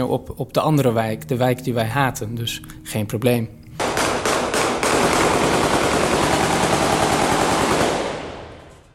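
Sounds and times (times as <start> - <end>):
speech: 0.0 - 3.6
automatic gunfire shot into the air at a funeral: 3.8 - 8.8.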